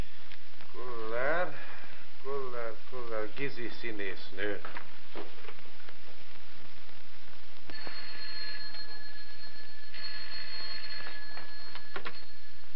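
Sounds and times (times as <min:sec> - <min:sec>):
hissy crackly background: 0:00.0 - 0:12.7
speech: 0:02.9 - 0:05.6
old-fashioned telephone bell ringing: 0:07.7 - 0:12.7.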